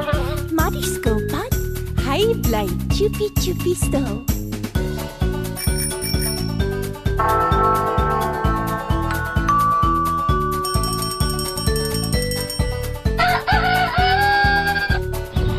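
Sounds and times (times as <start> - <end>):
bouncy steady-beat music track: 0.0 - 15.5
speech: 0.7 - 1.4, 2.2 - 4.4, 7.2 - 7.5
bicycle bell ringing: 5.6 - 13.2.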